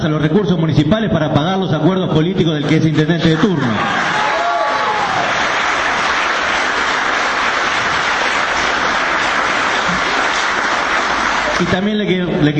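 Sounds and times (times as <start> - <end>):
speech: 0.0 - 4.2, 11.6 - 12.5
applause from many people in a council chamber: 3.2 - 12.0.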